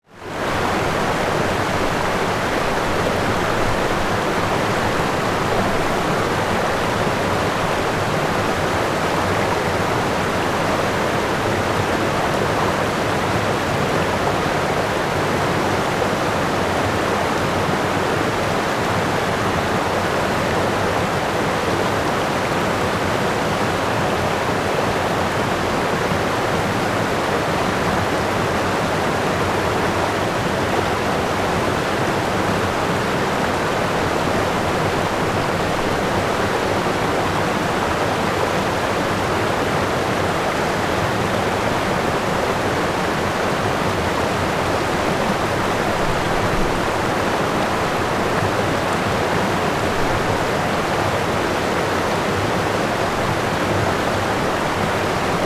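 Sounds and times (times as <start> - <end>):
waterfall ambience: 0.1 - 55.4.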